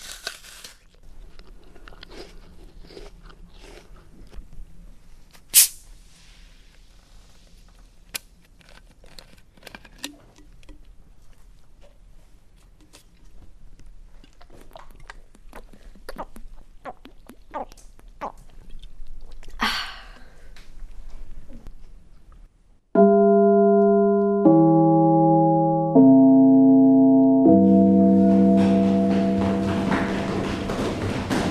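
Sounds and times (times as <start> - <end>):
crisp crunches of biting an apple: 0.0 - 4.6, 8.1 - 10.8
chewing an apple: 0.0 - 4.7, 8.6 - 11.5, 12.6 - 19.6
short tone: 23.0 - 31.4.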